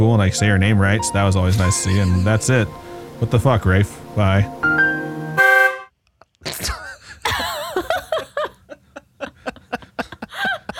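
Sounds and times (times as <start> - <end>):
speech: 0.0 - 4.8
people laughing: 1.8 - 2.5, 6.6 - 10.7
loud brassy horn honk sound effect: 5.4 - 5.9.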